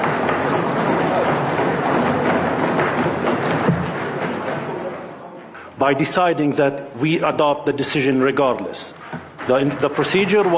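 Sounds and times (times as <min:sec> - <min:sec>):
crowd stomping feet and banging on desks: 0:00.0 - 0:05.2, 0:08.4 - 0:10.5
speech: 0:05.8 - 0:10.5.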